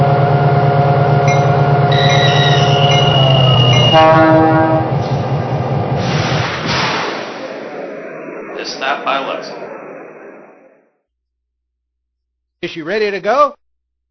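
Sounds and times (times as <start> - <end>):
steady rumble of the train on the track: 0.0 - 10.8
train horn blaring in a long sustained chord: 1.2 - 5.0
speech: 12.6 - 13.6.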